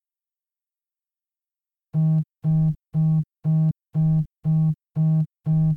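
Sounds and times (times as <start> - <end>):
phone vibrating: 1.9 - 5.7.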